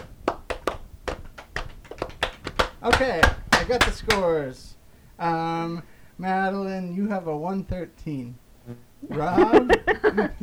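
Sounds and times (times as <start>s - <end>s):
single person clapping at a steady deliberate pace: 0.0s - 4.3s
speech: 2.8s - 10.4s
laughter: 9.1s - 10.4s.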